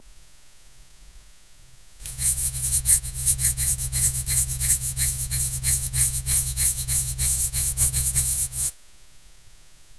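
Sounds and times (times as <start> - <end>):
brush strokes while painting: 2.0 - 8.7.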